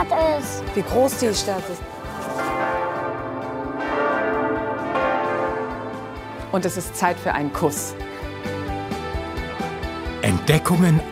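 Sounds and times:
speech: 0:00.1 - 0:02.0, 0:06.5 - 0:08.1, 0:10.3 - 0:11.1
large church tower bells ringing: 0:01.2 - 0:09.1.

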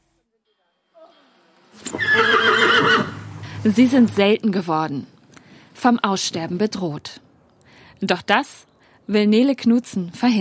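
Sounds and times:
Schleswig Coldblood draft horse whinnying at a breeder's in Horsbüll: 0:01.8 - 0:03.6
speech: 0:03.6 - 0:05.1, 0:05.8 - 0:07.2, 0:08.0 - 0:10.3.

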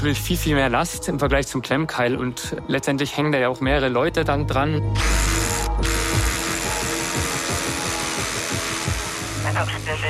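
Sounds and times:
speech: 0:00.0 - 0:06.0
power drill boring into hard material: 0:05.0 - 0:10.0.

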